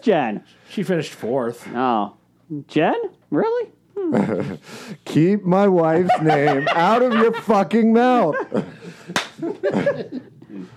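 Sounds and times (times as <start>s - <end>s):
speech: 0.0s - 10.7s
laughter: 5.9s - 10.7s
sharp loud slap: 9.1s - 9.4s.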